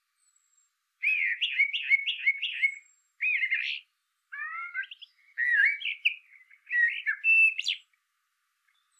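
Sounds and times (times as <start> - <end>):
Eurasian blackbird Turdus merula singing: 1.0 - 7.9.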